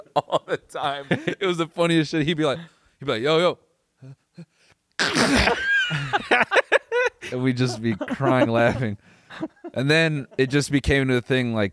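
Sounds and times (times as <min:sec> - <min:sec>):
laughter: 0:00.0 - 0:01.4, 0:05.3 - 0:10.8
speech: 0:00.2 - 0:06.6, 0:07.3 - 0:11.7
man imitating a sneeze: 0:05.0 - 0:05.6.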